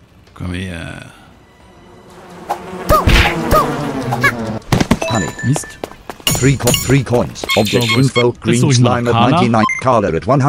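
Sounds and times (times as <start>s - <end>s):
low steady video game backdrop: 0.0s - 10.4s
speech: 0.4s - 1.2s, 5.2s - 10.4s
bee buzzing in a video game with chirp-like electronic tones: 1.5s - 5.0s.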